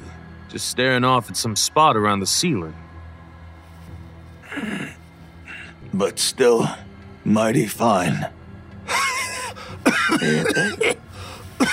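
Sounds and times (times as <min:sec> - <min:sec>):
speech: 0:00.5 - 0:02.9, 0:06.0 - 0:08.4, 0:10.2 - 0:11.0
man coughing hard into his shoulder: 0:08.9 - 0:11.0, 0:11.6 - 0:11.7.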